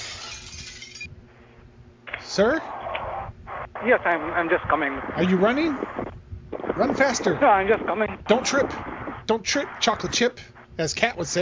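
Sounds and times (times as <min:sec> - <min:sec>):
glass shattering as a door is kicked in: 0:00.0 - 0:01.1
speech: 0:02.4 - 0:02.7, 0:03.8 - 0:05.9, 0:06.8 - 0:11.4
low rumble: 0:03.2 - 0:10.2.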